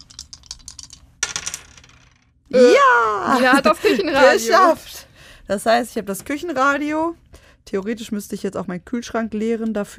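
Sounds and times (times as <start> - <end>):
dice rattling as they are shaken in a board game: 0.0 - 2.4
speech: 2.5 - 4.9, 5.5 - 9.9.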